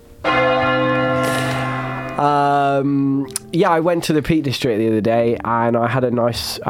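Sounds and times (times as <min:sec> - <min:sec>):
large bell struck and ringing: 0:00.2 - 0:04.5
speech: 0:02.2 - 0:06.6.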